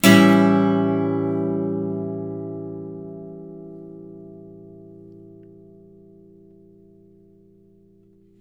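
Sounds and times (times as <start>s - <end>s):
blues guitar chords: 0.0s - 8.3s.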